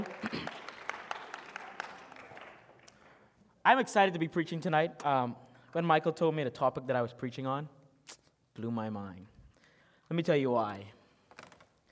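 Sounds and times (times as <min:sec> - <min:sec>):
audience applauding: 0:00.0 - 0:03.3
speech: 0:03.6 - 0:09.4, 0:10.1 - 0:11.0.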